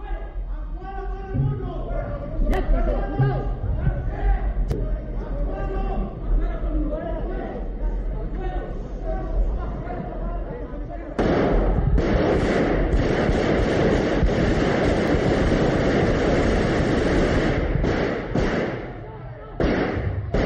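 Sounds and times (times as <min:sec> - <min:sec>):
murmuring voices in a parliament chamber: 0:00.0 - 0:13.0, 0:17.5 - 0:20.4
gunshots fired in a parliament chamber: 0:11.2 - 0:20.4.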